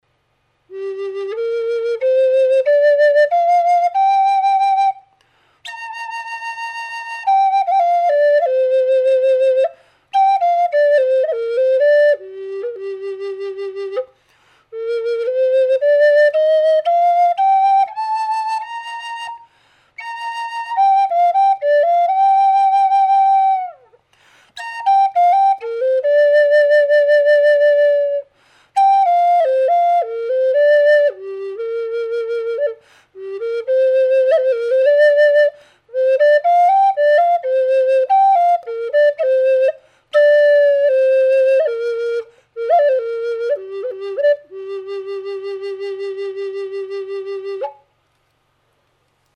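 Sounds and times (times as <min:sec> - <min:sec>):
flutes: 0:00.6 - 0:48.0.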